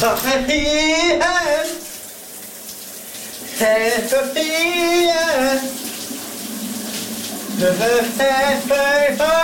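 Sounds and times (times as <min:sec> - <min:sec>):
man singing in the shower: 0:00.0 - 0:02.0, 0:03.5 - 0:05.8, 0:07.6 - 0:09.4
shower water running: 0:00.0 - 0:09.4.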